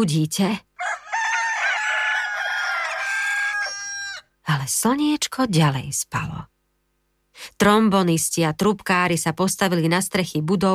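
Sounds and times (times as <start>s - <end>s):
speech: 0.0s - 0.7s, 4.5s - 6.5s, 7.4s - 10.7s
rooster crowing: 0.8s - 4.3s.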